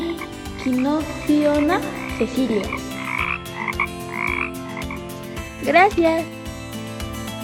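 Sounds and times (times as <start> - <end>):
frogs croaking in rasping bursts: 0.0 - 5.6
speech: 0.6 - 2.9, 5.6 - 6.4.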